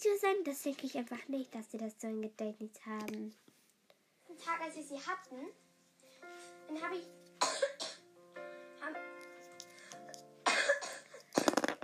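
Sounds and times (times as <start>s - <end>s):
speech: 0.0s - 3.5s, 4.4s - 5.6s, 6.2s - 7.8s
wet raspy coughs: 7.4s - 8.0s, 10.4s - 11.2s.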